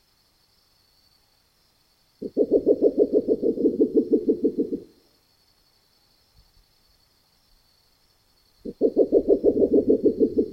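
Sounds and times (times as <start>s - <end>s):
spectacled owl hooting in fast even low pulses in the Neotropics: 2.2s - 5.0s, 8.6s - 10.5s.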